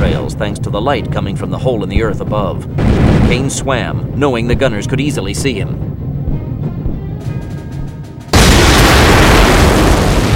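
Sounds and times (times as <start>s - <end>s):
low rumble: 0.0s - 10.3s
speech: 0.4s - 5.9s
explosion blasting through a stone wall: 2.8s - 3.6s, 8.3s - 10.3s
sharp crackles: 8.4s - 10.3s.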